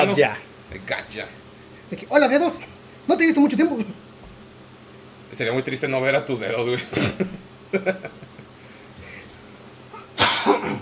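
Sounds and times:
speech: 0.0s - 4.0s, 5.3s - 8.3s
laughter: 6.9s - 8.5s
cough or sneeze: 10.0s - 10.8s.

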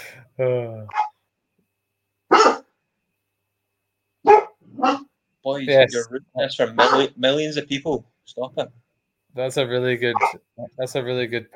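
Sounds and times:
speech: 0.4s - 1.0s, 4.8s - 11.5s
dogs barking sharply while walked past a window: 0.9s - 1.1s, 2.3s - 2.7s, 4.2s - 5.1s, 6.7s - 7.2s, 10.1s - 10.4s.

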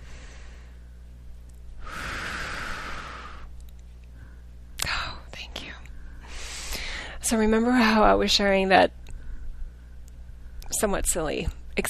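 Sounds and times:
deep slow breath: 0.0s - 1.0s, 1.8s - 3.5s, 4.1s - 4.5s, 6.0s - 7.2s
speech: 7.3s - 9.0s, 10.8s - 11.8s.

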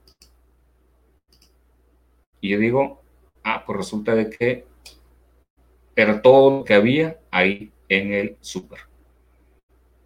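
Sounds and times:
soft computer mouse clicks: 0.0s - 0.4s, 1.3s - 1.6s
faint steady hum: 0.0s - 10.0s
speech: 2.4s - 5.0s, 6.0s - 8.9s.

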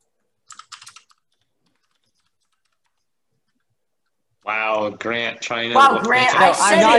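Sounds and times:
rapid typing on a computer keyboard: 0.4s - 3.7s
speech: 4.4s - 6.9s.

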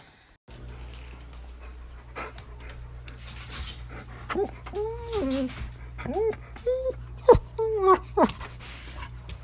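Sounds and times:
dog whining to be let outside: 4.3s - 8.6s.

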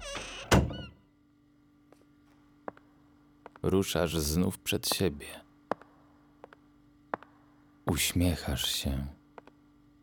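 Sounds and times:
door creaking: 0.0s - 1.1s
quiet hum: 0.0s - 10.0s
speech: 3.6s - 5.4s, 7.9s - 9.2s.

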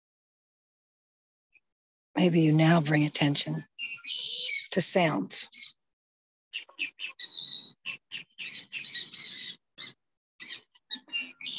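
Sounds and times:
speech: 2.2s - 5.7s
birds chirping and trilling outdoors: 2.2s - 5.8s, 6.6s - 11.5s.

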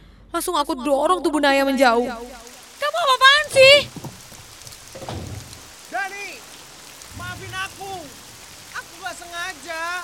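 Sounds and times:
speech: 0.4s - 4.0s
steady rain: 1.7s - 10.0s.

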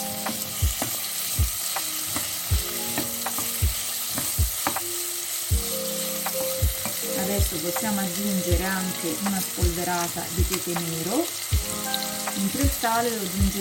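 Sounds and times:
meat browning and sizzling in a frying pan: 0.0s - 13.5s
speech: 7.4s - 11.4s, 12.4s - 13.5s.

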